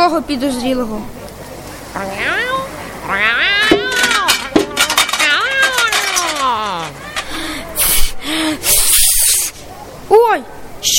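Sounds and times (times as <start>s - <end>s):
speech: 0.0s - 1.2s, 2.0s - 3.6s, 10.1s - 10.9s
cat meowing: 2.0s - 4.3s
metallic clinks and clatters of a metal trash bin: 3.7s - 7.4s
hissing spray: 7.8s - 9.6s.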